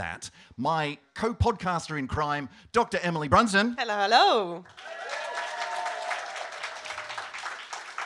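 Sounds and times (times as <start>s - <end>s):
speech: 0.0s - 5.0s
live audience applauding at a live event: 4.6s - 8.0s
faint cheers: 4.7s - 7.5s.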